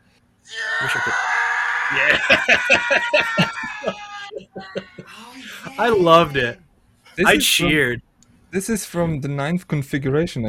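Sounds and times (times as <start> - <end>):
speech: 0.5 - 1.3, 1.9 - 4.0, 5.8 - 6.6, 7.2 - 10.4
loud drawn-out stock movie scream sound effect: 0.5 - 4.3
laughter: 0.6 - 6.4, 7.2 - 7.8.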